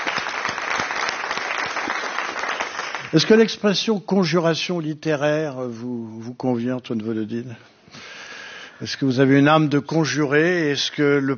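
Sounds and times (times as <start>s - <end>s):
studio audience applause at a live-audience recording: 0.0s - 3.5s
speech: 3.1s - 8.1s, 8.8s - 11.3s.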